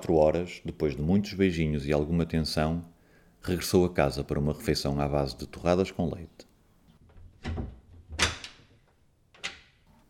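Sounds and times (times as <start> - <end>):
speech: 0.1 - 6.5, 7.4 - 7.7
building front door knocks and rattles: 7.0 - 9.8.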